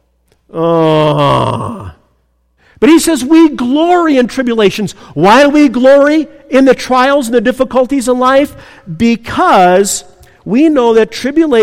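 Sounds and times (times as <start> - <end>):
speech: 0.5 - 1.6, 2.8 - 11.6
person groaning: 0.5 - 2.1.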